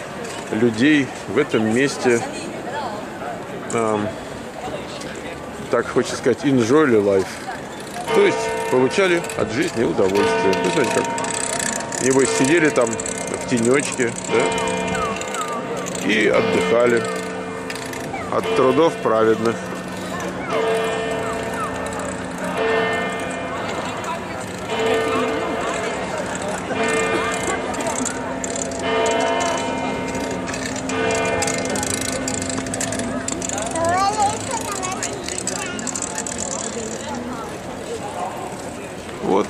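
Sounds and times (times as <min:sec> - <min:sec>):
busy outdoor background with voices: 0:00.0 - 0:39.4
speech: 0:00.5 - 0:02.4, 0:03.7 - 0:04.2, 0:05.7 - 0:07.5, 0:08.2 - 0:11.2, 0:12.0 - 0:14.7, 0:16.0 - 0:17.2, 0:18.3 - 0:19.7
church tower bell tolling: 0:08.1 - 0:33.3.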